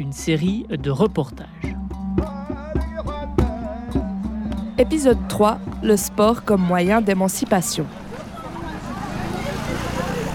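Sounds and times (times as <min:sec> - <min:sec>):
speech: 0:00.0 - 0:02.3, 0:04.8 - 0:08.0
passing cars and motorbikes in street traffic: 0:03.1 - 0:10.3.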